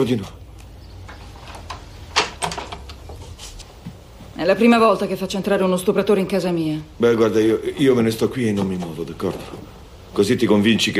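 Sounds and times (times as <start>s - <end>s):
speech: 0.0s - 0.4s, 4.4s - 10.9s
faint hiss: 0.0s - 10.9s
door latch and handle clicks as a door is opened: 1.5s - 3.0s.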